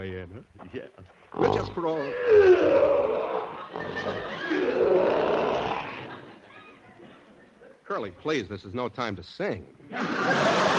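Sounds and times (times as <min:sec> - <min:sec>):
speech: 0:00.0 - 0:04.9, 0:07.9 - 0:10.7
lion roaring in a cage: 0:01.4 - 0:06.2
laughter: 0:09.9 - 0:10.7.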